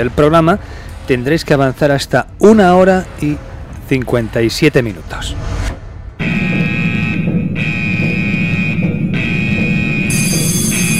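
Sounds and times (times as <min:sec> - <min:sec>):
speech: 0:00.0 - 0:05.7
alarm sound effect buzzing: 0:06.2 - 0:10.9
piercing high whine: 0:06.2 - 0:10.9.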